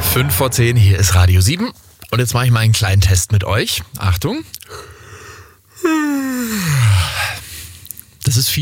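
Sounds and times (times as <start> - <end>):
speech: 0.1 - 4.9, 5.8 - 7.2, 8.3 - 8.6
person yawning: 5.8 - 7.4.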